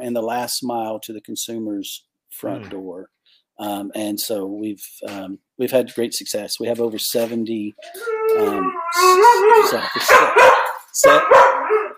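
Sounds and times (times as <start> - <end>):
speech: 0.0 - 11.8
dog howling and barking: 7.8 - 11.9.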